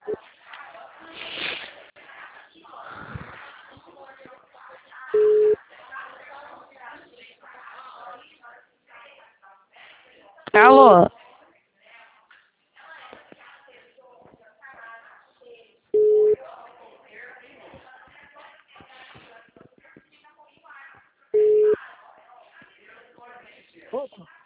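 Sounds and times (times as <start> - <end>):
continuous talk: 0.0 - 24.4
telephone busy tone after a dropped call: 5.2 - 5.6, 16.0 - 16.4, 21.4 - 21.8
speech: 10.6 - 11.1.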